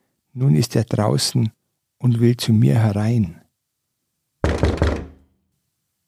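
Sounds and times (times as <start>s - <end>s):
speech: 0.4s - 3.4s
knocking on a wooden door: 4.4s - 5.3s.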